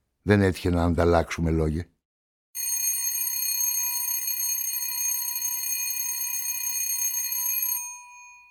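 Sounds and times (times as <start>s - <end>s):
speech: 0.2s - 1.9s
bright electric doorbell ringing: 2.6s - 8.5s.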